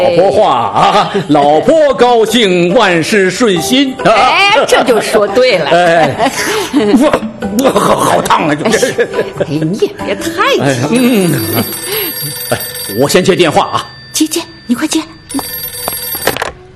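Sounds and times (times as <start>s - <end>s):
speech: 0.0s - 15.1s
people laughing: 5.9s - 10.0s, 10.6s - 12.8s
telephone ringing: 10.9s - 16.7s.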